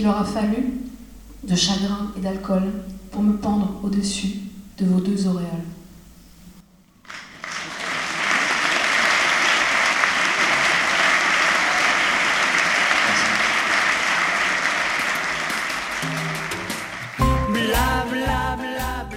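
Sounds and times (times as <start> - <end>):
speech: 0.0 - 5.8
audience applauding after a live song: 7.0 - 17.7
music with a steady beat: 15.5 - 19.1.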